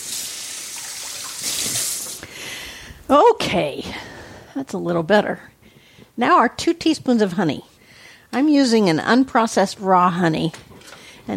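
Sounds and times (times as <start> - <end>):
tap water running over hands to rinse off sticky garlic: 0.0 - 2.2
speech: 3.1 - 4.0, 4.6 - 5.5, 6.2 - 7.7, 8.3 - 10.7.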